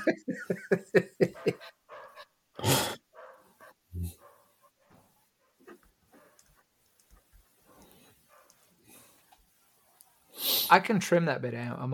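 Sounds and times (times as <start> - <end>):
speech: 0.0 - 0.8, 10.7 - 11.9
laughter: 0.0 - 1.7
dog barking: 1.2 - 2.3, 3.1 - 6.4, 8.3 - 8.6.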